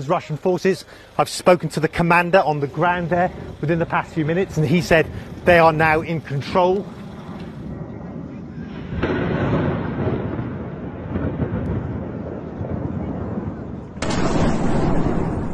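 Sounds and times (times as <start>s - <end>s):
speech: 0.0s - 7.0s
heavy explosions from missile strikes and bombardment in Kyiv and Kharkiv Ukraine: 7.7s - 15.5s.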